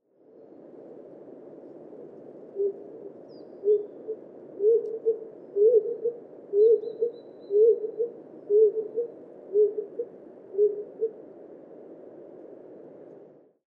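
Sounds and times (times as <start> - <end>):
stock dove cooing: 2.6 - 11.2.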